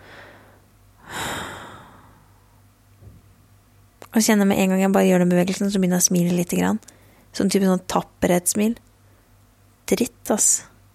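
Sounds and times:
slow deep breathing: 0.0 - 2.6
speech: 4.2 - 8.9, 9.9 - 10.7.

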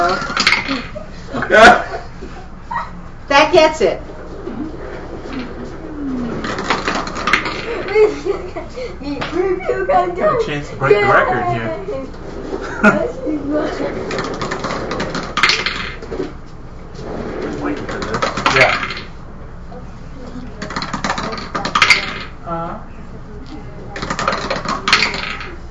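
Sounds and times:
dice rolled across a hard surface in a tabletop game: 0.0 - 0.9, 6.3 - 7.9, 14.0 - 16.1, 17.8 - 19.1, 20.6 - 22.4, 24.0 - 25.6
laughter: 0.0 - 3.0, 7.7 - 10.4, 11.7 - 14.0
speech: 3.5 - 4.1, 9.1 - 14.4.

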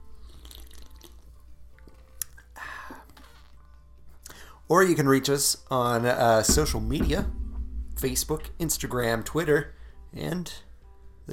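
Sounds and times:
slurping sip of a cold fizzy drink: 0.2 - 1.2
speech: 4.7 - 7.4, 8.0 - 10.7
low room hum: 6.5 - 11.0.

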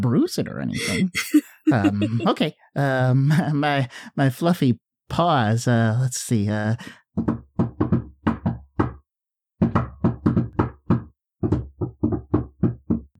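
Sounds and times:
speech: 0.0 - 7.4
laughter: 0.6 - 4.5
sharp knocks on a door: 7.2 - 9.0, 9.6 - 13.1.

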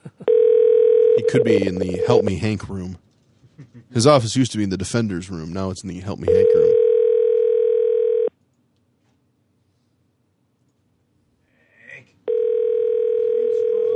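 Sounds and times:
telephone ringback tone: 0.3 - 2.3, 6.3 - 8.3, 12.3 - 13.9
speech: 1.2 - 3.1, 3.7 - 6.7.

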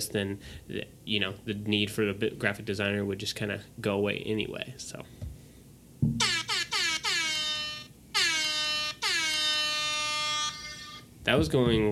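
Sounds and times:
speech: 0.0 - 5.2, 11.3 - 11.8
tinny air horn sound effect from a phone app: 6.2 - 11.1.

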